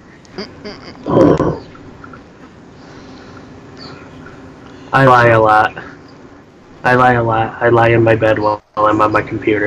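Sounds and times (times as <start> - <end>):
person imitating a growling roar: 0.6 - 1.6
speech: 4.9 - 6.0, 6.8 - 9.6.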